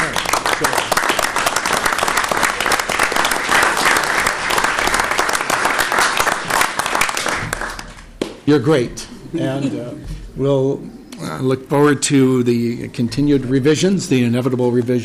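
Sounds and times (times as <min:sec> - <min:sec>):
audience applauding staff: 0:00.0 - 0:08.1
speech: 0:00.6 - 0:00.8, 0:08.5 - 0:15.0.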